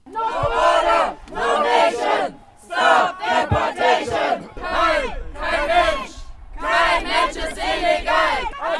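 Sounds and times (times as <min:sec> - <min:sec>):
crowd of protesters chanting anti-deportation slogans on an airport observation deck: 0:00.0 - 0:08.7.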